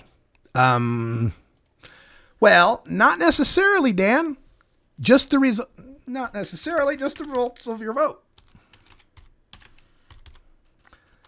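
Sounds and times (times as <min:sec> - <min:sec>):
speech: 0:00.6 - 0:01.4, 0:02.4 - 0:04.4, 0:05.0 - 0:08.2
typing on a computer keyboard: 0:06.8 - 0:07.6, 0:08.3 - 0:11.2.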